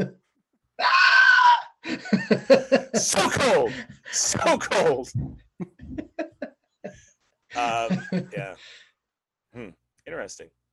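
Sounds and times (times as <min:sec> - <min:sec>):
high-pitched scream: 0:00.8 - 0:01.8
laughter: 0:01.8 - 0:03.9, 0:05.6 - 0:08.6
speech: 0:02.3 - 0:06.3, 0:07.5 - 0:08.8, 0:09.5 - 0:10.6.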